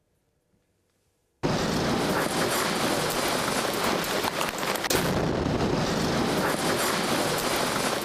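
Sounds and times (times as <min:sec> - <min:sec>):
parked gas tanker truck in China explosion after a gas leak: 0:01.4 - 0:08.0.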